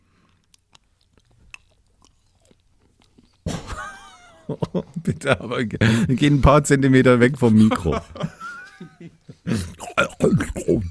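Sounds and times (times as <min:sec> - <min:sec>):
person chewing chocolate: 0:00.0 - 0:03.5
laughter: 0:03.5 - 0:06.2, 0:07.4 - 0:10.8
speech: 0:04.5 - 0:08.3.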